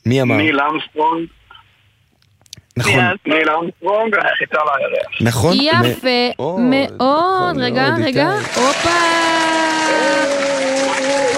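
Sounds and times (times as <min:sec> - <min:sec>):
speech: 0:00.1 - 0:01.4, 0:02.8 - 0:11.3
audience applause at a quiz game show: 0:08.3 - 0:11.3.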